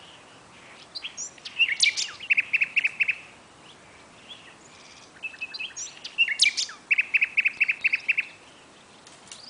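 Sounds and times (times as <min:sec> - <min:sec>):
Common nightingale Luscinia megarhynchos song: 0:00.0 - 0:09.4.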